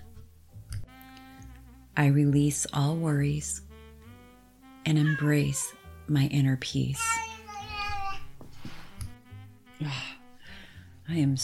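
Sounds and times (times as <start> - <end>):
speech: 2.0 - 3.6, 4.8 - 7.3, 11.1 - 11.4
cat meowing with plaintive cries and yowls: 4.9 - 5.8.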